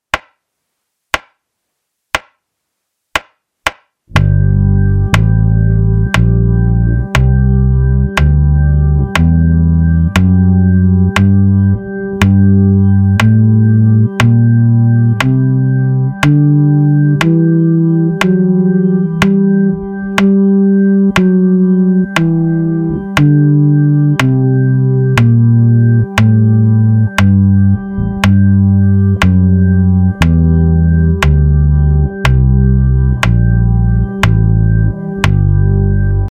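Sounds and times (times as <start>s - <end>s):
jazz minor bass line: 4.1s - 36.3s.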